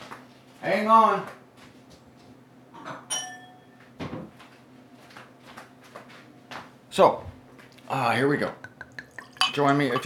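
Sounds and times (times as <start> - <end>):
speech: 0.6 - 1.4, 7.0 - 7.3, 7.9 - 8.7, 9.6 - 10.0
wine glass clinking as taken out of a cupboard: 3.1 - 3.7, 8.7 - 10.0.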